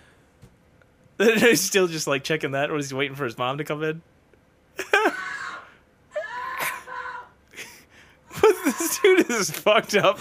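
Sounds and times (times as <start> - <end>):
speech: 1.2 - 4.1, 9.3 - 10.1
man screaming and wailing in a played video: 4.8 - 10.1.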